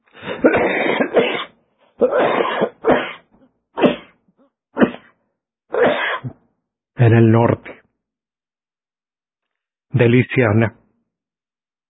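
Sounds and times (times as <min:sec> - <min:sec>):
person coughing from volcanic ash in the lungs: 0:00.2 - 0:04.2, 0:04.8 - 0:06.4
speech: 0:07.0 - 0:07.8, 0:10.0 - 0:10.8.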